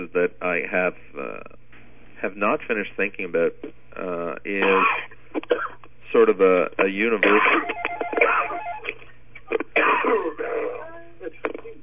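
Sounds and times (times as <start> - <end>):
speech: 0.0 - 1.5, 2.2 - 5.0, 6.2 - 7.7
person clearing throat: 4.6 - 5.8, 7.2 - 8.6, 9.4 - 10.8
person coughing: 4.6 - 5.8, 7.2 - 8.6, 9.5 - 10.7.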